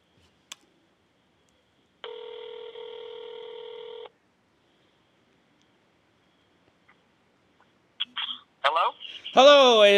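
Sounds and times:
ringback tone of an outgoing telephone call: 2.0s - 4.1s
speech: 8.8s - 9.9s.

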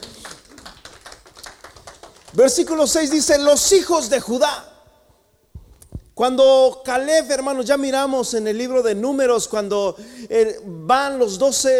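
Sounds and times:
audience clapping in rhythm: 0.0s - 3.5s
speech: 2.3s - 4.7s, 6.2s - 11.7s.

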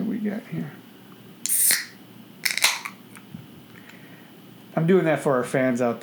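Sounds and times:
speech: 0.3s - 0.9s, 4.8s - 6.0s
can of beer cracked open with fizzy hiss: 1.5s - 3.3s.

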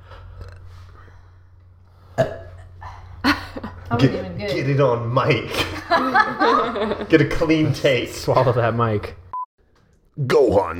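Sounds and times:
low hum: 0.0s - 10.7s
throaty burps: 2.1s - 2.8s
speech: 2.2s - 2.4s, 3.9s - 9.2s, 10.2s - 10.7s
laughter: 5.5s - 7.4s.

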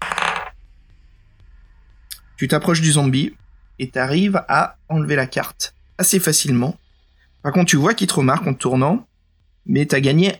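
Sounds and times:
die rolling across a desk during a tabletop role-playing game: 0.0s - 0.5s
speech: 2.4s - 6.8s, 7.4s - 10.3s.

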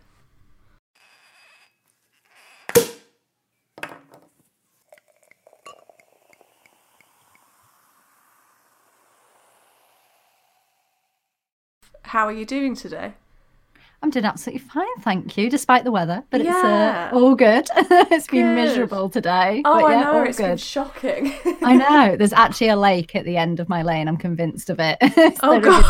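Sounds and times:
glasses of fizz clinking: 4.9s - 6.8s
speech: 12.1s - 13.2s, 14.1s - 25.8s
laughter: 17.7s - 18.9s, 25.0s - 25.8s.

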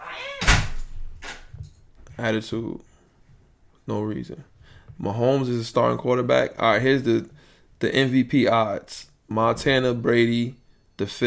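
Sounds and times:
door slamming shut: 0.2s - 1.5s
speech: 2.2s - 2.9s, 3.9s - 11.2s.

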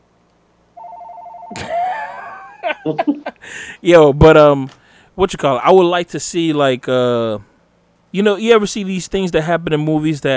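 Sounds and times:
house phone ringing with an electronic trill: 0.8s - 1.7s
laughter: 1.5s - 3.5s
speech: 2.8s - 7.5s, 8.1s - 10.3s.

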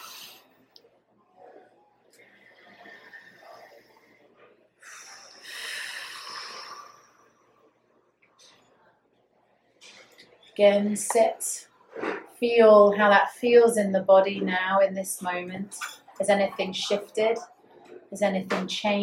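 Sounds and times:
deep breathing during a guided meditation: 2.1s - 7.6s
speech: 10.6s - 11.7s, 12.4s - 17.5s, 18.1s - 19.0s.

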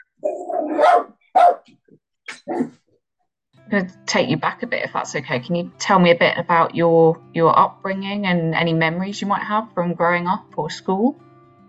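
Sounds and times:
little chihuahua yapping and barking: 0.2s - 1.6s, 2.3s - 2.8s
speech: 3.7s - 11.2s.

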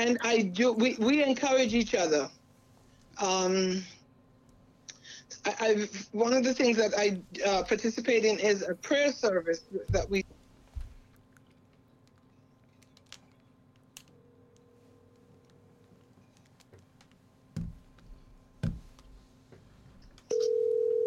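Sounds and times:
speech: 0.0s - 2.4s, 3.2s - 4.0s, 5.4s - 10.4s
phone's outgoing ringing tone: 20.3s - 21.0s.

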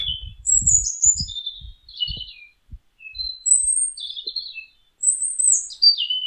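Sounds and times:
soft low thumps and rumbles: 0.0s - 3.3s
nightingale singing: 0.0s - 6.2s.

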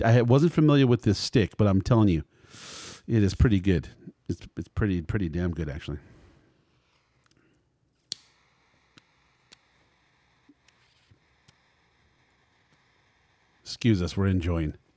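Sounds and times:
speech: 0.0s - 6.2s, 13.7s - 14.8s
cigar crackling while being lit and toasted: 6.4s - 14.9s
lighter click: 8.1s - 9.7s.

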